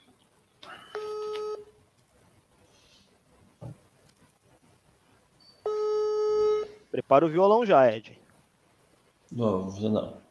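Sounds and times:
telephone line click: 0:00.9 - 0:01.6
telephone ringback tone on a long-distance call to Paraná, Brazil: 0:01.0 - 0:01.7, 0:05.6 - 0:06.8
speech: 0:07.0 - 0:08.2, 0:09.3 - 0:10.2.

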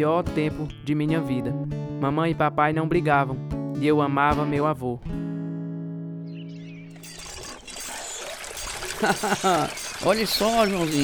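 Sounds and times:
speech: 0:00.0 - 0:05.2, 0:09.0 - 0:11.0
steady squeaky tonal whine: 0:06.5 - 0:11.0
water from a hand pump pouring and splashing into a bucket: 0:07.2 - 0:11.0
laughter: 0:08.8 - 0:09.9.

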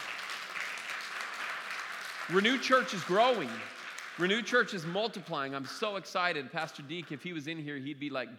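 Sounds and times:
audience applause: 0:00.0 - 0:04.8
speech: 0:02.3 - 0:08.3.

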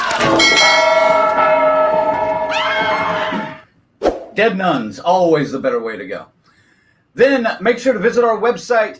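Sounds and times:
bell ringing: 0:00.2 - 0:03.6
speech: 0:04.4 - 0:06.3, 0:07.1 - 0:08.9.

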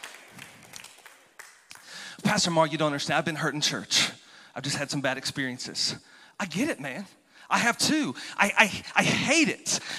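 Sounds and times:
crowd clapping: 0:00.0 - 0:02.2
speech: 0:02.3 - 0:09.9.

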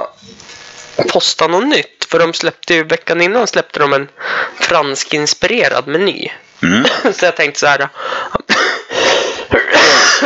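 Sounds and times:
speech: 0:01.0 - 0:08.4
loud harsh coughs: 0:06.6 - 0:07.2, 0:08.4 - 0:10.2.

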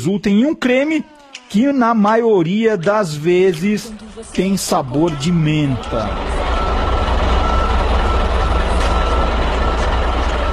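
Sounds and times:
speech: 0:00.0 - 0:06.4
heavy trucks arriving and rumbling: 0:02.5 - 0:10.5.

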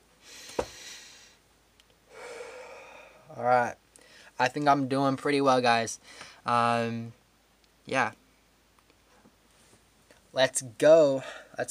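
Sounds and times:
person taking a breath: 0:00.2 - 0:01.4, 0:02.1 - 0:03.3, 0:04.0 - 0:04.4, 0:06.0 - 0:06.4
speech: 0:03.3 - 0:03.8, 0:04.4 - 0:07.2, 0:07.9 - 0:08.2, 0:10.3 - 0:11.6.

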